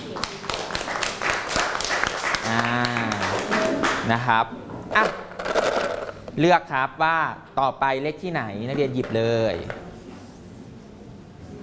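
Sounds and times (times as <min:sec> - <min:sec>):
group of students clapping in a classroom: 0:00.0 - 0:04.1
speech: 0:04.1 - 0:05.3, 0:06.4 - 0:09.9.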